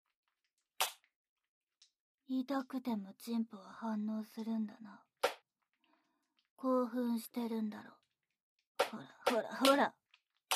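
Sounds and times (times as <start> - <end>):
speech: 2.3 - 5.1, 6.6 - 8.0, 8.9 - 10.0
slap on bare skin: 5.2 - 5.4.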